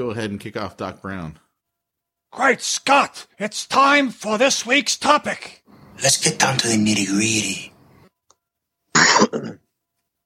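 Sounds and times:
speech: 0:00.0 - 0:01.4, 0:02.3 - 0:07.7, 0:09.2 - 0:09.6
person coughing: 0:08.9 - 0:09.7.

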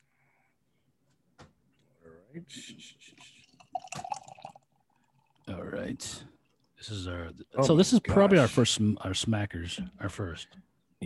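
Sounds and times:
speech: 0:02.3 - 0:03.4, 0:05.5 - 0:11.0
heavily fruited mango beer of about 5% poured into a glass: 0:03.6 - 0:05.5.

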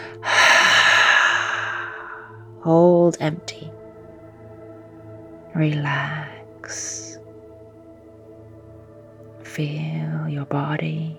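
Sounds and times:
person exhaling during a guided breathwork exercise: 0:00.0 - 0:02.4
speech: 0:02.6 - 0:03.8, 0:05.6 - 0:07.1, 0:09.6 - 0:11.1.

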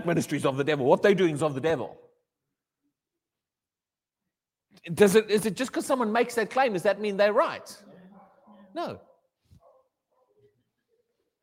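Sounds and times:
speech: 0:00.0 - 0:02.0, 0:04.8 - 0:07.9, 0:08.7 - 0:09.1
dog barking in a back room: 0:08.1 - 0:10.5.

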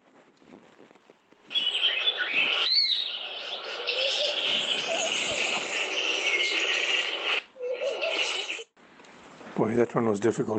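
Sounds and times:
Knysna woodpecker shriek: 0:01.5 - 0:08.6
busy chorus of other birds chirping and calling: 0:01.5 - 0:08.7
speech: 0:09.7 - 0:10.5.

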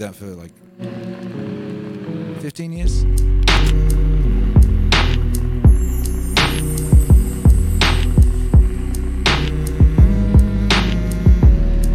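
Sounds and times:
speech: 0:00.0 - 0:01.4, 0:02.4 - 0:04.4
two people humming a melodic hook: 0:00.8 - 0:11.9
steady thumping beat with crisp percussive hits: 0:03.4 - 0:11.9.

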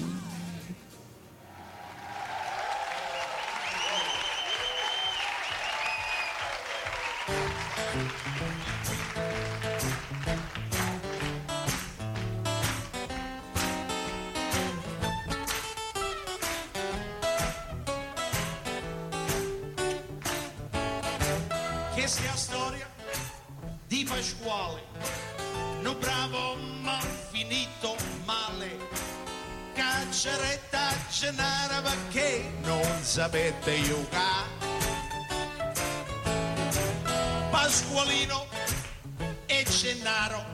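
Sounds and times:
concert crowd applause and cheering: 0:01.4 - 0:14.8
full band playing live with rhythmic strums and bright melodic lines: 0:05.7 - 0:40.5
speech: 0:31.2 - 0:34.4, 0:37.7 - 0:38.5.

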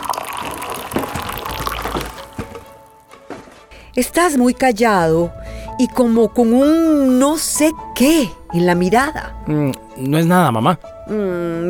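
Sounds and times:
agua dulce being poured into a cup: 0:00.0 - 0:02.8
speech: 0:04.0 - 0:11.6.

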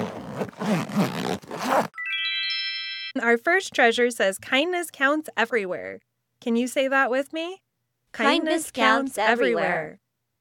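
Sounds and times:
backpack zipper being pulled open: 0:00.0 - 0:01.9
bright shimmering chime: 0:02.0 - 0:03.2
speech: 0:03.2 - 0:10.0.

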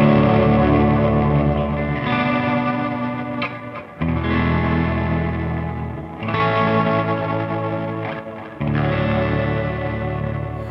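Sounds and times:
overdriven electric guitar chords strummed with modulation and reverb: 0:00.0 - 0:10.6.

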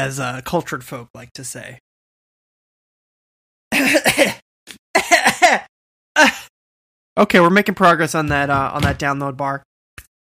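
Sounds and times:
speech: 0:00.0 - 0:01.9, 0:07.2 - 0:09.7
person clearing throat: 0:03.7 - 0:04.4, 0:05.0 - 0:06.5
person coughing: 0:03.7 - 0:04.4, 0:05.0 - 0:06.5.

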